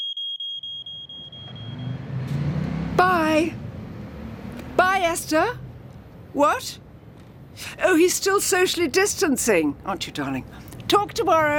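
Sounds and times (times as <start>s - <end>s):
smoke alarm beeping, set off by burning sourdough toast: 0.0s - 2.0s
low rumbling noise: 1.6s - 7.6s
speech: 3.0s - 3.6s, 5.0s - 5.6s, 6.3s - 6.8s, 7.6s - 11.5s.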